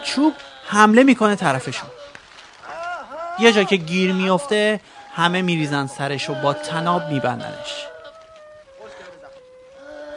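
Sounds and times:
speech: 0.2s - 2.0s, 3.4s - 7.9s
man imitating a cow's moo while being tied with a rope: 3.2s - 7.9s.

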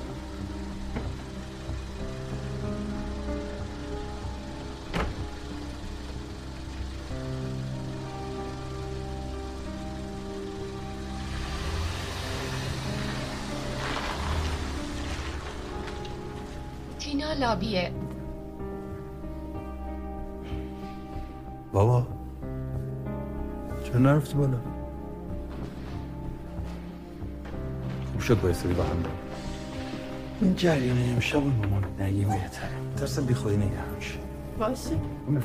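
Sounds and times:
rain-like hiss: 0.0s - 17.6s, 28.2s - 31.6s
car engine humming as the car pulls into a garage: 0.0s - 35.4s
speech: 17.2s - 18.0s, 21.7s - 22.1s, 24.0s - 24.8s, 28.3s - 29.3s, 30.4s - 35.4s.

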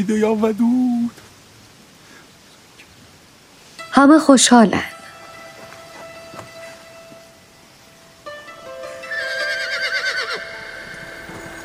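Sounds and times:
speech: 0.0s - 1.2s, 4.0s - 5.0s
ridden horse whinnying at a gallop: 9.0s - 11.6s.

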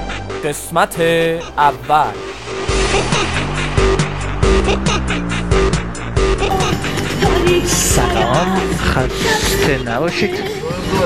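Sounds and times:
speech: 0.4s - 2.3s, 4.6s - 5.3s, 7.5s - 11.0s
car engine and road rumble inside a moving vehicle: 2.2s - 10.1s.

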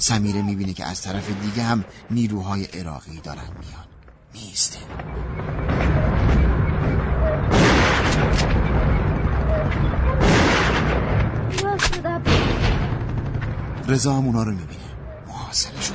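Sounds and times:
speech: 0.0s - 7.0s, 13.9s - 14.8s, 15.5s - 15.9s
gunfire on a street: 1.2s - 2.1s, 5.6s - 9.3s, 10.1s - 11.3s, 11.9s - 13.5s
artillery blasts on a street: 5.6s - 11.5s, 12.2s - 13.8s.

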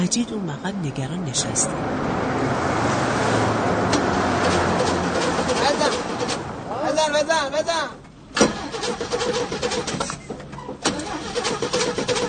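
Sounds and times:
speech: 0.0s - 3.4s, 5.6s - 8.0s, 8.8s - 10.3s
car engine cranking and revving in a repair shop: 1.7s - 6.7s, 8.4s - 10.2s, 10.8s - 12.2s.

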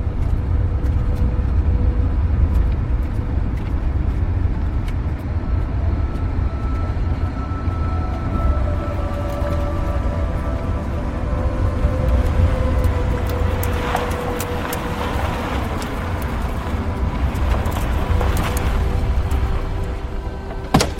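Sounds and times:
car driving along a road: 0.0s - 20.9s.

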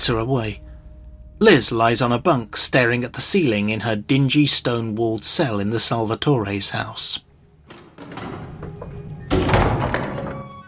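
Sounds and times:
speech: 0.0s - 0.7s, 1.4s - 7.3s
heavy cell door swinging open with metallic scrape and clank: 7.6s - 10.6s.

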